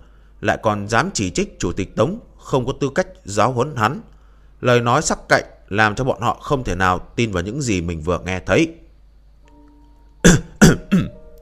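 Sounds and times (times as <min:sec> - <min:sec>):
speech: 0:00.4 - 0:08.8, 0:10.2 - 0:10.8
dry coughs: 0:10.2 - 0:11.2.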